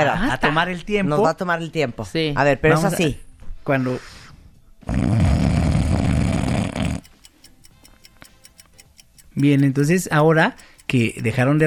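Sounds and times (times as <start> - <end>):
speech: 0.0 - 4.2, 4.8 - 5.6, 9.4 - 11.6
person snoring with a rough rattling low drone: 4.8 - 7.1.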